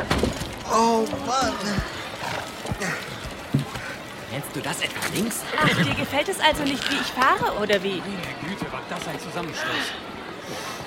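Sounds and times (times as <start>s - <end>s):
rumbling noisy background: 0.0s - 7.7s
speech: 0.8s - 2.0s, 4.4s - 10.7s
horses snorting: 1.6s - 4.0s, 5.6s - 6.1s.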